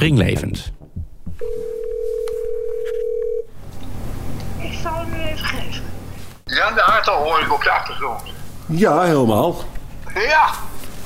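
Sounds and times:
speech: 0:00.0 - 0:00.8, 0:06.6 - 0:11.0
telephone call to an old number ringing tone: 0:01.4 - 0:03.5.

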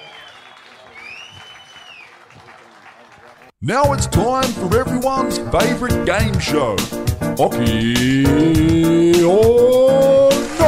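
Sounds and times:
sharp rising-and-falling whistle: 0:00.0 - 0:02.1
crowd clapping steadily: 0:00.0 - 0:03.6
speech: 0:03.6 - 0:10.6.

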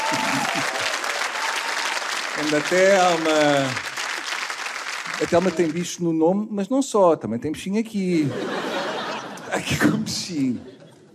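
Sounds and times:
laughter: 0:00.0 - 0:01.0, 0:08.2 - 0:11.1
audience applause: 0:00.0 - 0:06.0
speech: 0:02.4 - 0:03.9, 0:05.2 - 0:08.7, 0:09.5 - 0:10.8.

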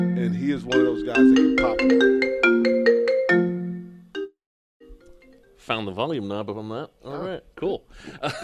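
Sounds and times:
phone ringtone playing through a studio computer: 0:00.0 - 0:05.5
speech: 0:00.2 - 0:02.4, 0:05.7 - 0:08.4.

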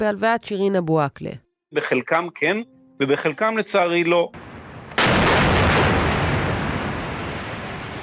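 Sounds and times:
speech: 0:00.0 - 0:04.5
missile strike blast on high-rise building: 0:04.4 - 0:08.0
roar and rumble of collapsing high-rise building: 0:04.4 - 0:08.0.

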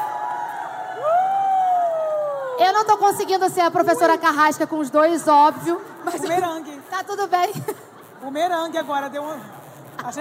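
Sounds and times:
rising whoop: 0:00.0 - 0:02.6
live audience shouting and cheering: 0:00.0 - 0:02.8
speech: 0:02.6 - 0:10.1
laughter: 0:10.0 - 0:10.1.

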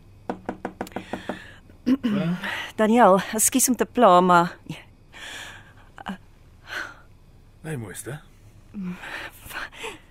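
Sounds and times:
knocking on an office door: 0:00.2 - 0:01.5
speech: 0:01.9 - 0:04.8, 0:07.6 - 0:09.3.

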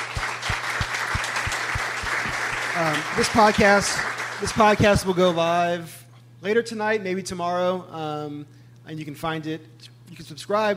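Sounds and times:
rhythmic thumping: 0:00.0 - 0:03.8
audience applause: 0:00.0 - 0:05.4
speech: 0:02.8 - 0:10.7.

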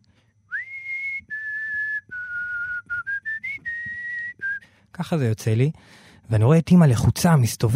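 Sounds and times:
man whistling a short melody: 0:00.5 - 0:04.8
speech: 0:05.0 - 0:07.7.

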